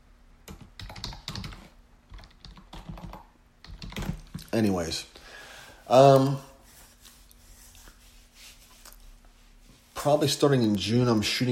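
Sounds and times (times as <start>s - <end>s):
faint typing on a computer keyboard: 0.5s - 4.5s
speech: 4.5s - 5.1s, 5.9s - 6.5s, 10.0s - 11.4s.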